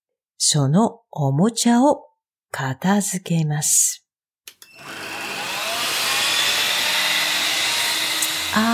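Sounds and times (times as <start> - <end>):
speech: 0.4 - 4.0, 8.6 - 8.7
brief switch clicks: 4.5 - 4.7
vacuum cleaner running: 4.6 - 8.7.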